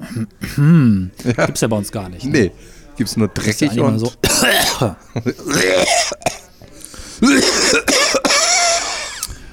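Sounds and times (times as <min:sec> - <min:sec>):
speech: 0:00.2 - 0:06.4, 0:07.2 - 0:08.4
harsh phlegmy coughing: 0:04.2 - 0:06.5, 0:07.2 - 0:09.3
laughter: 0:04.9 - 0:05.8.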